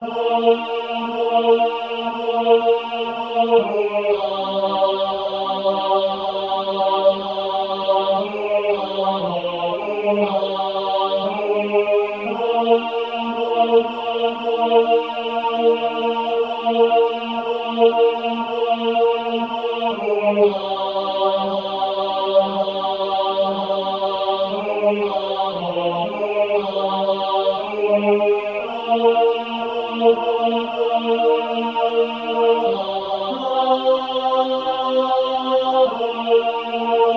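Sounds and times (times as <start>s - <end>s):
SATB choir singing: 0.0s - 37.1s.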